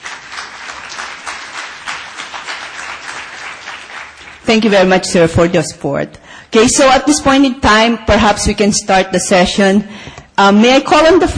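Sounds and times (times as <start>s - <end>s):
audience applauding at a tuberculosis program session: 0.0s - 4.9s
speech: 4.5s - 11.3s.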